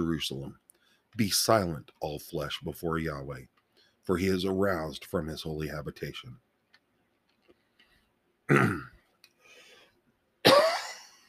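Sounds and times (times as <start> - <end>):
speech: 0.0 - 0.6, 1.2 - 6.4, 8.5 - 8.9
person clearing throat: 8.5 - 9.0, 10.4 - 11.1
small click of a cough drop being put in: 8.5 - 9.0, 10.5 - 11.1.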